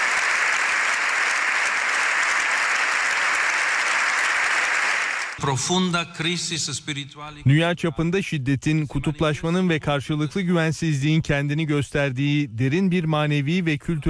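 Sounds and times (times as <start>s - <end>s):
standing ovation applause in parliament general assembly after an address: 0.0s - 5.4s
speech: 5.4s - 14.0s.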